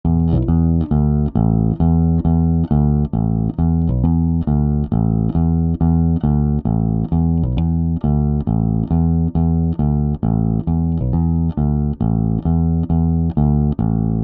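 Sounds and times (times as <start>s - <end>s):
bass with chorus effect: 0.0s - 14.2s.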